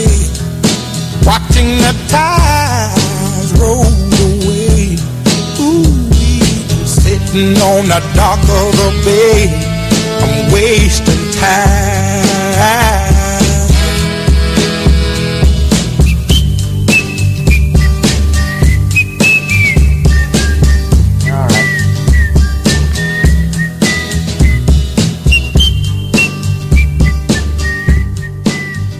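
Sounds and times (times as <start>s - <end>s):
full band backing with steady drums and bass: 0.0s - 28.9s
speech: 1.6s - 2.4s, 7.4s - 9.6s, 10.5s - 12.0s
clear loud whistled melody: 16.0s - 28.9s.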